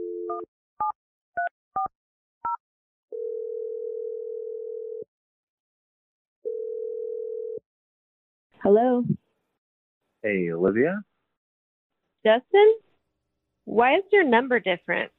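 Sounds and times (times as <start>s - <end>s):
speech: 0.4s - 1.0s, 8.6s - 9.2s, 10.2s - 11.1s, 12.2s - 12.9s, 13.7s - 15.1s
long steady telephone tone: 2.5s - 5.1s, 6.4s - 7.6s.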